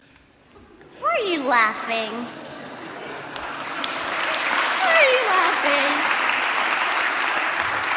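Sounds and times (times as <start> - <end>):
speech: 1.3 - 2.4, 5.0 - 6.0
laughter: 2.0 - 6.0
audience clapping: 3.0 - 7.9.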